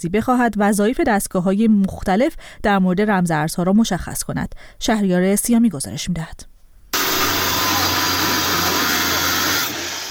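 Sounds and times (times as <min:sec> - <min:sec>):
speech: 0:00.0 - 0:06.5
electric saw cutting through entrance: 0:07.0 - 0:10.1.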